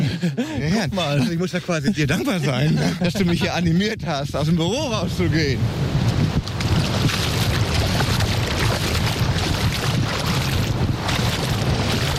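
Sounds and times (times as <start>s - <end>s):
laughter: 0.0s - 3.8s
speech: 0.2s - 6.0s
wind buffeting at a sandy island beach: 0.5s - 12.1s
rushing surf at a sandy island beach: 5.1s - 12.1s.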